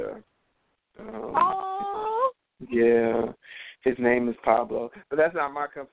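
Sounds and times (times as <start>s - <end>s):
speech: 1.0s - 1.4s, 2.6s - 5.9s
9-week-old tri-colored Cavalier King Charles spaniel puppy whining: 1.0s - 2.4s.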